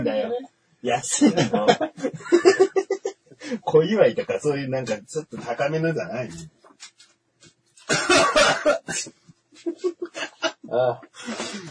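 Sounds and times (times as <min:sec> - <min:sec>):
speech: 0:00.0 - 0:02.7, 0:03.7 - 0:06.6, 0:07.9 - 0:11.7
laughter: 0:01.2 - 0:03.6, 0:07.9 - 0:11.7
person with a cold coughing: 0:07.9 - 0:09.1.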